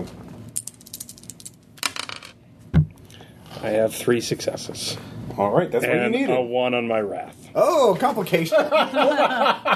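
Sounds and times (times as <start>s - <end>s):
dice rolling across a tabletop in a tabletop game: 0.6s - 2.4s
speech: 3.6s - 9.7s
laughter: 8.4s - 9.7s.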